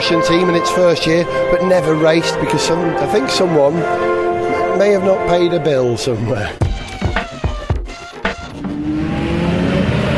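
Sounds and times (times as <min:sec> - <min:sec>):
speech: 0:00.1 - 0:06.7
endurance race cars pulling away from the starting grid: 0:08.5 - 0:10.1.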